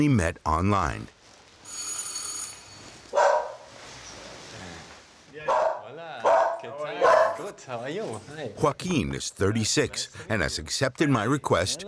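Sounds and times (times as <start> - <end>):
speech: 0.0 - 1.2, 6.7 - 11.8
high electronic ringing tone: 1.6 - 3.0
two dogs barking at a private home: 3.1 - 3.7, 5.4 - 7.6.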